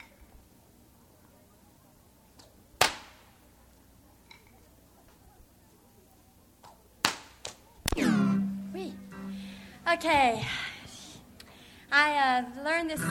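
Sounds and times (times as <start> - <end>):
sharp loud whip cracks: 2.8 - 3.3, 7.0 - 8.2
speech: 9.9 - 10.6, 11.9 - 13.0.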